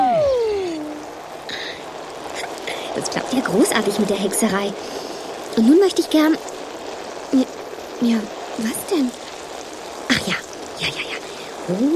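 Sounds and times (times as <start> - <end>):
downward gliding whistling tone: 0.0 - 0.9
steady hissing rain: 0.0 - 11.9
speech: 3.0 - 6.6, 7.3 - 9.2, 10.3 - 11.1, 11.7 - 11.9.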